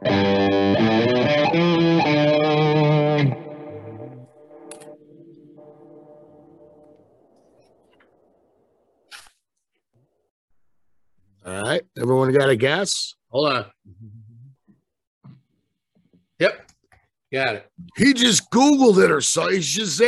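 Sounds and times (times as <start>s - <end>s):
heavily distorted electric guitar strumming chords with effects: 0.0s - 6.9s
speech: 12.0s - 14.2s, 16.4s - 16.6s, 17.3s - 20.0s.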